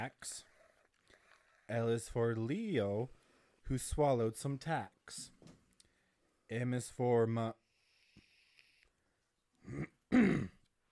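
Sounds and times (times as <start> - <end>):
speech: 0.0 - 0.5, 1.7 - 5.6, 6.5 - 7.6, 9.7 - 10.5
throat clearing: 9.6 - 10.6.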